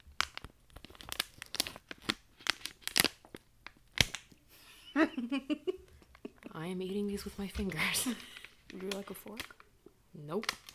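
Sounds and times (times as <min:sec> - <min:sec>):
package of fresh dill pickle snacking cuts torn open: 0:00.0 - 0:04.4, 0:08.2 - 0:09.7, 0:10.4 - 0:10.7
speech: 0:05.0 - 0:05.7, 0:06.6 - 0:09.6, 0:10.2 - 0:10.6.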